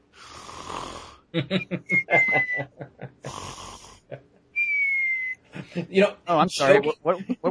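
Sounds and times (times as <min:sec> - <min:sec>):
person snoring: 0:00.2 - 0:01.4, 0:03.2 - 0:04.1
speech: 0:01.3 - 0:04.3, 0:05.6 - 0:07.4
laughter: 0:01.4 - 0:03.3, 0:05.6 - 0:06.1.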